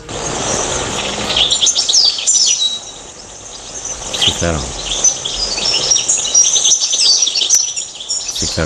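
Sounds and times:
European robin singing at night: 0.0s - 8.6s
steady hiss: 0.0s - 8.6s
speech: 4.4s - 4.8s.

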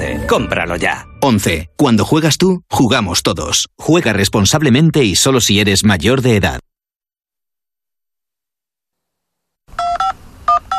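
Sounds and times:
speech: 0.3s - 6.7s
touch-tone phone dialing beeps: 9.8s - 10.7s.

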